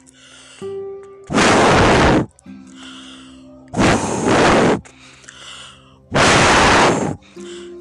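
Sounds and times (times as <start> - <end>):
soft tonal music: 0.0 - 7.7
person puffing hard to imitate a wolf blowing at a house: 1.3 - 3.1, 3.8 - 7.7.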